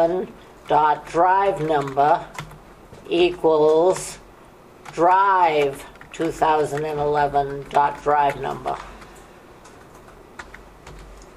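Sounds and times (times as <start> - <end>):
speech: 0.0 - 2.4, 3.1 - 4.2, 4.9 - 8.9
faint typing on a computer keyboard: 0.6 - 2.6, 4.8 - 11.3.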